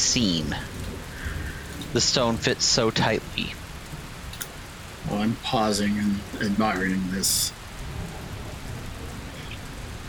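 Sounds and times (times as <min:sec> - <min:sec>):
steady rain pattering on surfaces: 0:00.0 - 0:10.0
speech: 0:00.1 - 0:00.7, 0:01.9 - 0:03.6, 0:05.0 - 0:07.6.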